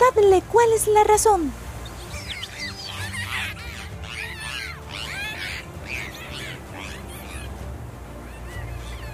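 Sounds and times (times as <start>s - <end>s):
speech: 0.3s - 1.6s
dolphin squeaky whistles and chirps: 1.8s - 7.6s, 8.2s - 9.1s.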